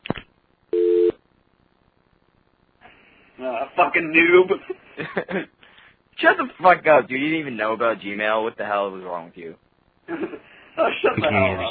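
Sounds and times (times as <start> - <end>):
telephone tone after dialing a conference line: 0.7 - 1.2
speech: 3.4 - 5.6, 6.2 - 11.6.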